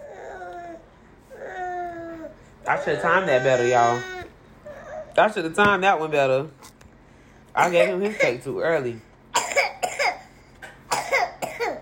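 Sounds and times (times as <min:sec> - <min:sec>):
speech: 0:02.7 - 0:04.2, 0:05.2 - 0:06.7, 0:07.6 - 0:09.1
small coughs: 0:09.4 - 0:11.8.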